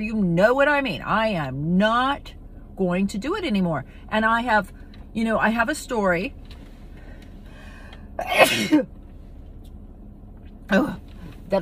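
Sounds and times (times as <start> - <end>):
speech: 0.0 - 6.5, 8.2 - 9.0, 10.7 - 11.5
sneeze: 8.2 - 8.8.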